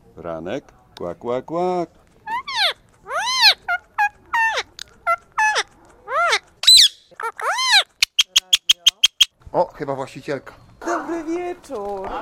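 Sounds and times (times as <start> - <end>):
speech: 0.2 - 2.0, 9.6 - 12.2
pet bird chattering with squawky calls at a small mirror: 2.3 - 4.7, 5.4 - 9.3
pet bird short sharp clicking chirps: 8.0 - 9.3.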